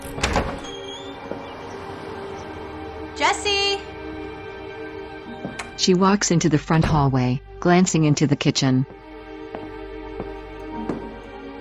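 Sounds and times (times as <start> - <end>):
soft thud of front door: 0.0 - 1.4, 6.7 - 7.1
door creaking as it swings: 0.0 - 1.8, 5.2 - 5.9, 6.6 - 7.3
speech: 5.8 - 9.0.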